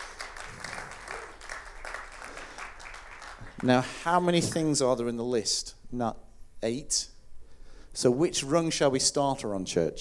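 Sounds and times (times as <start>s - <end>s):
church audience clapping: 0.0s - 4.7s
speech: 3.6s - 7.1s, 8.0s - 9.9s.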